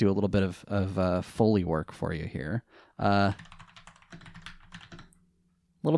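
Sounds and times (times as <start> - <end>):
speech: 0.0 - 3.5
typing on a mechanical keyboard: 3.2 - 5.2.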